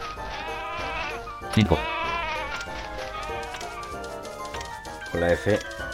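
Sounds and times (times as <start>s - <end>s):
several sheep bleating in a chorus: 0.2s - 4.0s
speech: 1.6s - 2.0s, 5.2s - 5.8s.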